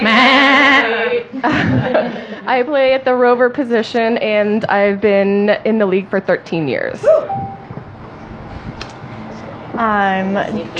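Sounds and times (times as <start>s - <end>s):
goat bleating: 0.0s - 0.8s
laughter: 1.3s - 2.4s
speech: 1.4s - 7.5s, 9.7s - 10.7s.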